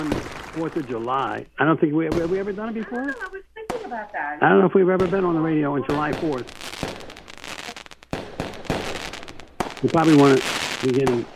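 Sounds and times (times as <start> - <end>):
speech: 0.0 - 6.7, 9.8 - 11.3
Fourth of July fireworks crackling and popping: 0.0 - 11.3.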